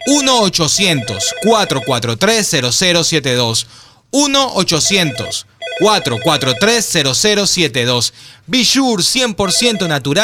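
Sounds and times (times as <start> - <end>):
telephone ringing after a number is dialed: 0.0 - 2.0, 4.8 - 6.9, 9.5 - 10.2
speech: 0.1 - 10.2.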